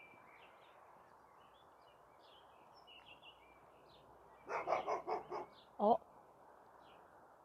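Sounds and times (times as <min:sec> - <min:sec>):
neighbour's dog barking in a garden: 0:04.5 - 0:05.6
speech: 0:05.8 - 0:06.0.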